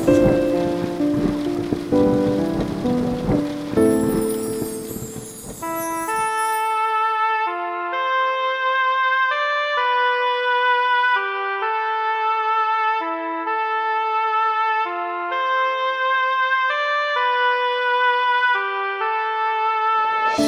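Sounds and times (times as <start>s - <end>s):
steady rain pattering: 0.0s - 7.1s
gentle melodic music: 0.0s - 20.4s
clear sustained chime-like tones: 4.0s - 7.0s.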